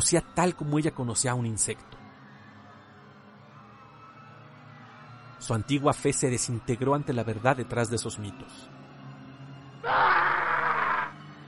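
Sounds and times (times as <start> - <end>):
speech: 0.0 - 2.0, 5.4 - 8.8
man screaming in agony: 9.8 - 11.2.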